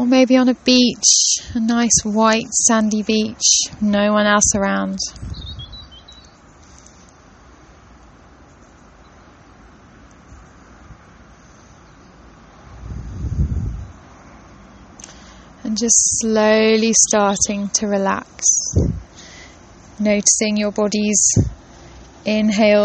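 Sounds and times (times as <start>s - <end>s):
speech: 0.1s - 5.3s, 15.8s - 19.1s, 20.0s - 21.6s, 22.2s - 22.8s
steady outdoor wind rumble: 0.5s - 6.0s, 12.6s - 14.4s, 15.8s - 19.2s, 20.0s - 21.7s
faint bird chirps in a garden: 5.1s - 6.9s.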